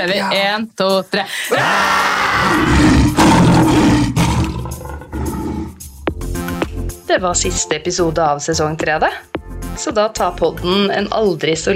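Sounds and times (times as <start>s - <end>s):
speech: 0.0s - 3.0s, 7.1s - 11.7s
several people roaring together: 1.5s - 5.8s.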